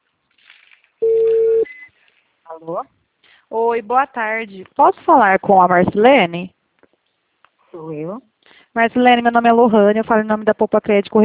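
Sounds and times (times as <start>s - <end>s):
telephone ringing tone while placing a call: 1.0s - 1.7s
speech: 2.6s - 6.6s, 7.8s - 11.2s.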